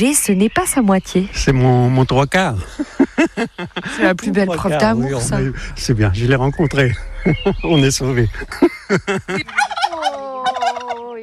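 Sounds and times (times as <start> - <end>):
speech: 0.0 - 10.2
laughter: 2.5 - 11.2
steady high whistling tone: 5.1 - 8.6
turkeys gobbling: 6.7 - 11.1.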